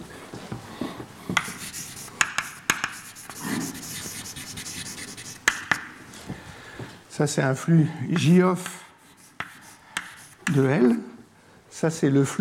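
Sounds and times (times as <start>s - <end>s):
handwriting during a lecture on protein polymerization: 1.3s - 6.0s, 8.2s - 10.8s
sharp taps: 1.3s - 6.0s, 8.2s - 10.6s
speech: 7.2s - 8.8s, 10.6s - 11.1s, 11.8s - 12.3s.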